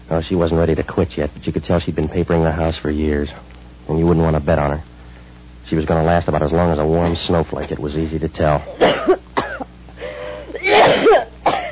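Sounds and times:
speech: 0.1 - 4.9, 5.7 - 9.3
person coughing: 8.7 - 11.6.

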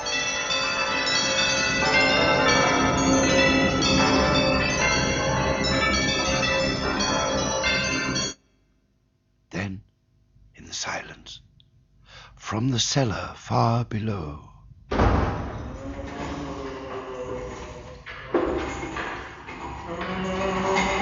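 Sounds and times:
many house bells ringing loudly: 0.0 - 8.4, 15.2 - 21.0
speech: 12.5 - 14.5.

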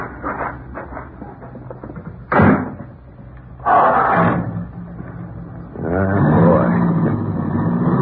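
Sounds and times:
car engine starting and running: 0.0 - 8.0
car doors thudding shut: 2.3 - 2.8.

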